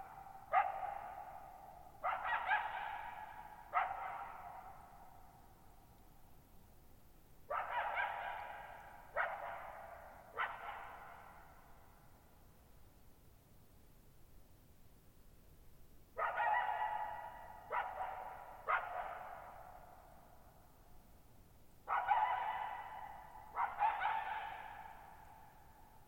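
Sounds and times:
lone coyote barking in a meadow: 0.0s - 4.9s, 7.5s - 11.4s, 16.2s - 19.8s, 21.8s - 25.4s.

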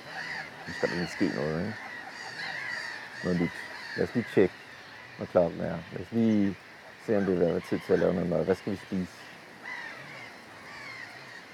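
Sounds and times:
gulls calling: 0.0s - 11.5s
speech: 0.7s - 1.9s, 3.2s - 4.6s, 5.2s - 9.2s.

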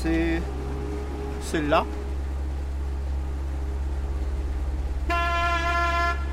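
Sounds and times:
river boat engine droning at cruising speed: 0.0s - 6.3s
speech: 1.5s - 2.0s
bright sustained horn toot: 5.0s - 6.3s.

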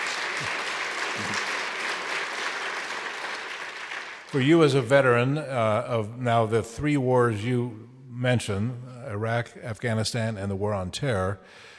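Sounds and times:
audience applause: 0.0s - 4.4s
speech: 4.3s - 11.7s.

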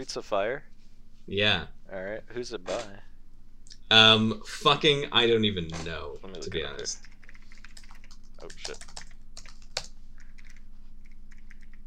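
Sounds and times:
speech: 0.0s - 0.7s, 1.3s - 3.1s, 3.9s - 7.1s, 8.4s - 8.9s
low hum: 0.0s - 11.8s
rapid clicky keystrokes on a mechanical keyboard: 6.2s - 11.8s.

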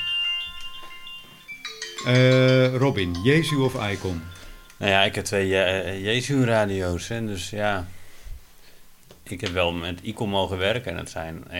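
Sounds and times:
electronic telephone ringtone: 0.0s - 5.2s
speech: 2.0s - 8.0s, 9.3s - 11.5s.

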